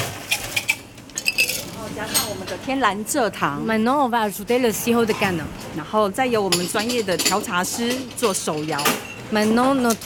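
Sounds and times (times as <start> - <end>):
ice cubes dropped into a cup: 0.3 - 1.8
speech: 1.9 - 10.0.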